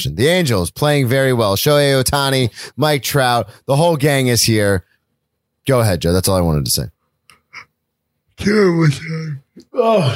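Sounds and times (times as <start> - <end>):
speech: 0.0 - 4.9, 5.6 - 7.0, 8.4 - 10.1
person yawning: 8.9 - 10.1.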